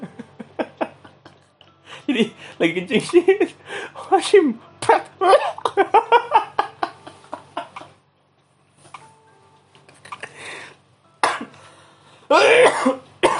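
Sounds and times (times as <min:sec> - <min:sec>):
speech: 0:02.1 - 0:06.2
person coughing: 0:11.2 - 0:11.5, 0:12.3 - 0:13.3.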